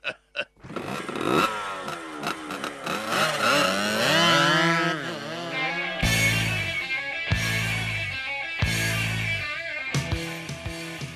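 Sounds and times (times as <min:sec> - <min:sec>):
motocross bike engine revving: 0:00.6 - 0:09.4.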